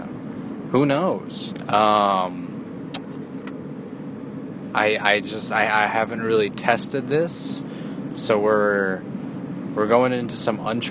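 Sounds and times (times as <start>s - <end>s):
car interior engine and road rumble while driving: 0.0s - 10.8s
speech: 0.7s - 2.5s, 4.7s - 9.2s, 9.8s - 10.8s.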